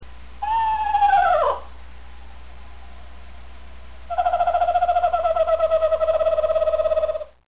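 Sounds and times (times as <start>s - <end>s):
laughing owl calling: 0.4s - 2.3s, 4.1s - 7.4s.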